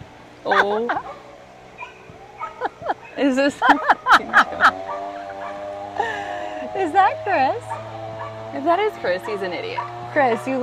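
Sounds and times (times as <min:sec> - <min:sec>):
speech: 0:00.4 - 0:01.2, 0:03.2 - 0:05.3, 0:06.8 - 0:10.6
neighbor's dog barking: 0:00.5 - 0:05.8, 0:07.7 - 0:08.4, 0:09.2 - 0:10.6
laughter: 0:02.5 - 0:07.2.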